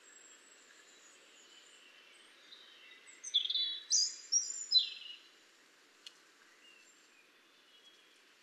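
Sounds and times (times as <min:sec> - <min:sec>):
European robin Erithacus rubecula singing: 0:03.2 - 0:05.2
faint tick: 0:06.0 - 0:06.2.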